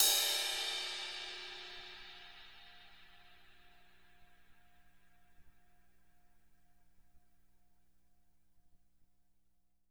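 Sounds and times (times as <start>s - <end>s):
crash cymbal hit on the tip: 0.0s - 3.7s.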